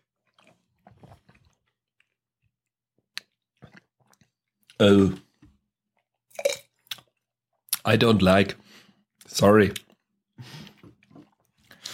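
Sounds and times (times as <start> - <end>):
person sipping red ale: 0.3 - 2.2, 3.2 - 5.5, 6.3 - 7.2, 10.4 - 11.9
speech: 4.8 - 5.2, 7.9 - 8.6, 9.3 - 9.8.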